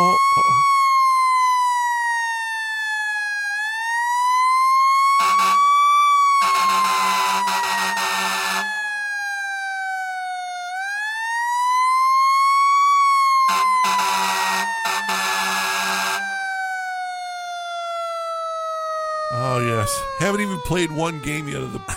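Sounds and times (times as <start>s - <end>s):
emergency vehicle siren wailing: 0.0s - 21.9s
blaring air horn bursts: 5.2s - 5.6s, 6.4s - 8.7s, 13.5s - 16.2s
speech: 19.9s - 21.9s.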